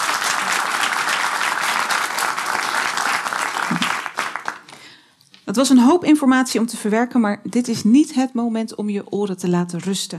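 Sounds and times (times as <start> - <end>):
room full of people clapping: 0.0 - 5.0
speech: 5.5 - 10.1.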